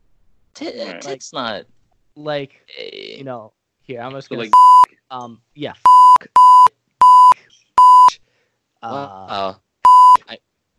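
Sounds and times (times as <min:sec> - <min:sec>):
speech: 0:00.6 - 0:06.4, 0:08.8 - 0:09.6
loud steady censor bleeps over speech: 0:04.4 - 0:04.9, 0:05.9 - 0:08.2, 0:09.9 - 0:10.2.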